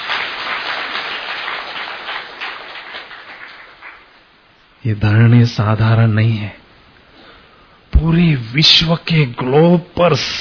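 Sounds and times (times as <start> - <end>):
audience applause in a large hall: 0.0 - 4.2
speech: 4.8 - 6.6, 8.0 - 10.3.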